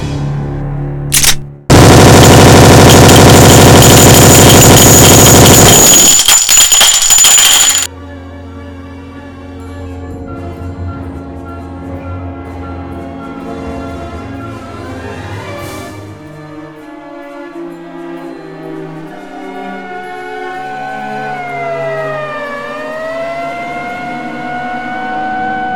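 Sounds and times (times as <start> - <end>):
Thompson 1921 submachine gun: 1.1 - 7.9.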